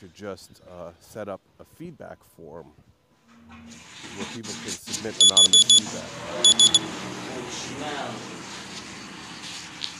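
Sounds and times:
speech: 0:00.0 - 0:02.9, 0:03.5 - 0:08.7
cooking timer for fish beeping: 0:05.2 - 0:06.9.

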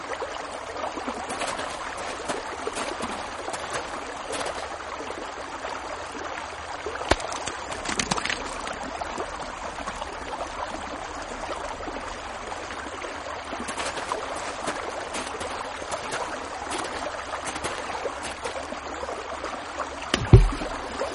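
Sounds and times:
water splashing and trickling: 0:00.0 - 0:21.1
river water rushing along a riverbank: 0:00.4 - 0:04.9, 0:06.8 - 0:21.1
low knock or splash: 0:07.1 - 0:08.6, 0:20.1 - 0:21.1.

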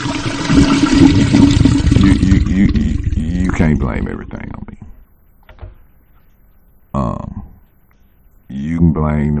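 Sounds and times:
toilet flushing: 0:00.0 - 0:04.1
speech: 0:03.6 - 0:04.5, 0:09.0 - 0:09.3.

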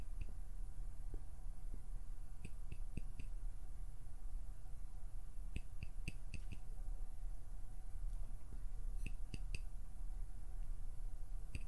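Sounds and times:
faint hum: 0:00.0 - 0:11.6
steady low hiss: 0:00.0 - 0:11.6
soft clicks and snaps from plucking and pinching: 0:02.4 - 0:03.4, 0:05.5 - 0:06.7, 0:09.0 - 0:09.7, 0:11.5 - 0:11.6.

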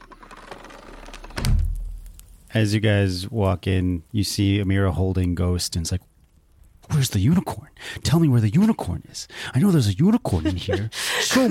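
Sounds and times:
door closing with heavy low thud: 0:00.3 - 0:02.0
speech: 0:02.5 - 0:06.1, 0:07.0 - 0:11.5
laughter: 0:10.2 - 0:11.5.

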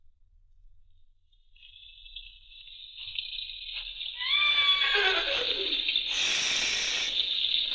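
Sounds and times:
constant hissing background: 0:01.6 - 0:07.7
horse giving a loud quavering whinny: 0:04.2 - 0:05.8.

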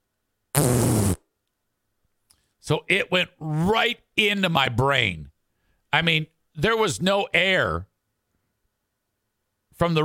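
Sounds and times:
voice imitating a dog fart with a buzzy raspberry: 0:00.6 - 0:01.2
speech: 0:02.7 - 0:05.3, 0:05.9 - 0:07.9, 0:09.8 - 0:10.0.

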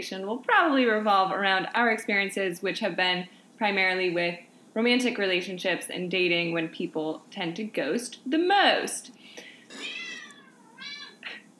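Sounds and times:
speech: 0:00.0 - 0:10.0
cat meowing: 0:09.7 - 0:11.2.

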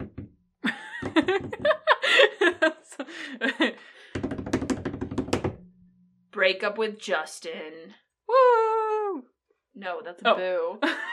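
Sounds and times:
drum roll of fingers tapping a tabletop: 0:00.0 - 0:00.3, 0:01.0 - 0:01.8, 0:04.1 - 0:05.6
people laughing: 0:00.7 - 0:03.9, 0:10.8 - 0:11.1
speech: 0:01.1 - 0:04.0, 0:06.4 - 0:08.6, 0:09.8 - 0:11.1.

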